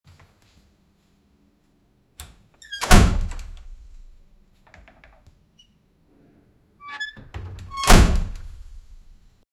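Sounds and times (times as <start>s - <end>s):
creaky wooden framed door: 2.6s - 3.7s, 6.8s - 8.6s.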